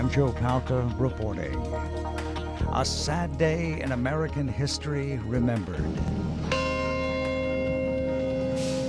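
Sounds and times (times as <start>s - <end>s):
speech: 0.2s - 2.2s, 2.7s - 6.2s
deep memorial bell tolling at the World Trade Center site: 6.1s - 8.8s.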